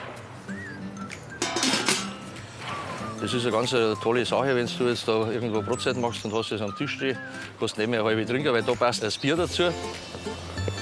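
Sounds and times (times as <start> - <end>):
lid put on a fish smoker loaded with salted fish: 1.4 - 2.3
speech: 3.2 - 10.4.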